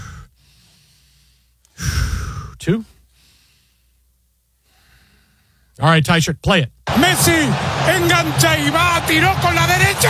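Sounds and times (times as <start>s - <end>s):
deep breathing close to the microphone: 0.0s - 5.8s
speech: 2.6s - 2.9s, 5.8s - 10.0s.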